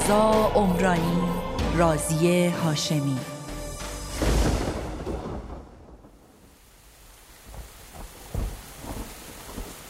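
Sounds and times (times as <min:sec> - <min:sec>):
speech: 0:00.1 - 0:03.3
steady rain pouring down: 0:04.0 - 0:09.8
loud rumble of thunder: 0:04.1 - 0:09.8.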